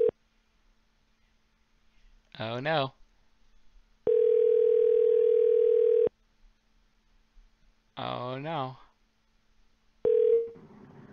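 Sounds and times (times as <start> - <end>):
speech: 2.4 - 3.0, 8.0 - 8.8
electronic phone ringing tone: 4.1 - 6.1, 10.0 - 10.6.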